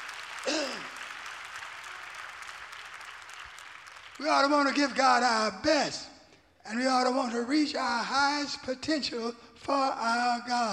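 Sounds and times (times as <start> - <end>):
audience clapping hands: 0.0 - 5.4
speech: 4.2 - 10.7.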